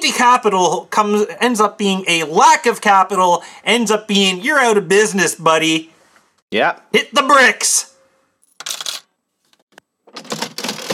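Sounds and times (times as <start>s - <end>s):
speech: 0.0s - 5.9s, 6.5s - 7.9s
cash register sound effect with ding, coins and drawer: 8.5s - 9.2s, 10.1s - 10.9s.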